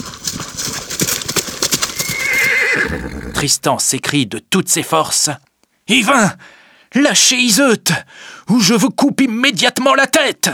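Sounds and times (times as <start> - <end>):
hooves clip-clopping: 0.0 - 3.2
horse neighing: 1.8 - 3.6
speech: 2.9 - 10.5.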